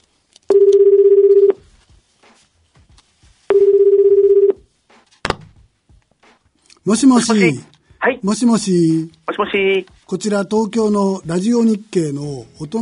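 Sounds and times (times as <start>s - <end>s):
ringback tones from an outgoing phone call: 0.5s - 1.6s, 3.5s - 4.6s
speech: 6.9s - 12.8s.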